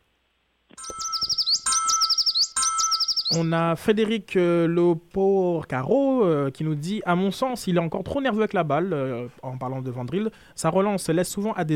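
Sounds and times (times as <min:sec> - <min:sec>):
bird chirp and tweet sound effect: 0:00.8 - 0:03.6
speech: 0:03.3 - 0:11.7.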